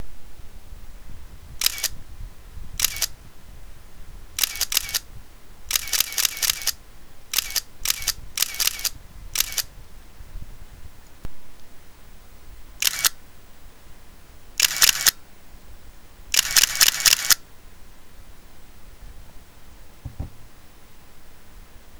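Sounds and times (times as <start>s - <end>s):
Nikon F3 camera shutter clicking: 1.6s - 2.0s, 2.8s - 3.2s, 4.4s - 5.0s, 5.7s - 9.7s, 12.8s - 13.2s, 14.6s - 15.2s, 16.4s - 17.4s.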